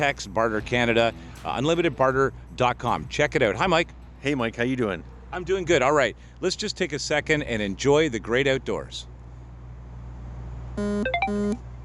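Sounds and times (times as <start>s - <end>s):
speech: 0.0s - 9.1s, 10.8s - 11.7s
low steady hum: 0.0s - 11.8s
phone ringtone playing a short electronic melody: 10.8s - 11.6s.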